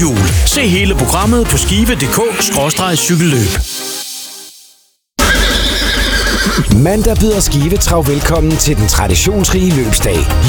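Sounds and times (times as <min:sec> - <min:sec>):
speech: 0:00.0 - 0:03.9, 0:06.8 - 0:10.4
horse whinnying at a trotting race: 0:05.2 - 0:06.8.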